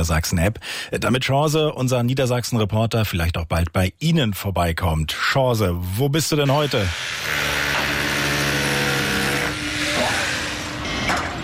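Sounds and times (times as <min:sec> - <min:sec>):
speech: 0:00.0 - 0:07.6
construction machinery noise at a construction site in Niederlangen Emsland Germany: 0:06.4 - 0:11.4.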